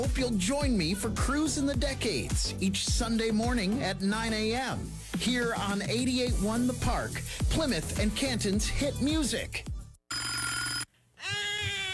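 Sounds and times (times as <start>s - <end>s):
speech: 0.0s - 9.7s
telephone ringing: 10.1s - 10.9s.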